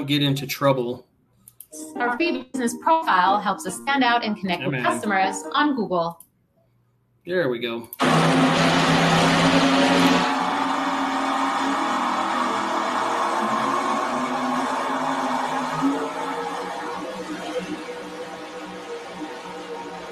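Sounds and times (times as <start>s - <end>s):
speech: 0.0s - 1.1s, 1.7s - 6.2s, 7.2s - 8.8s
loud vintage Diamond T truck engine revving: 8.0s - 20.1s.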